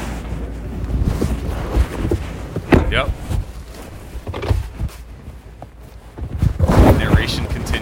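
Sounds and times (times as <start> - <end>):
quiet rustling and handling noise: 0.8 - 7.8
car door opening with mechanical clunks: 2.6 - 3.6, 4.2 - 5.0
speech: 2.9 - 3.2.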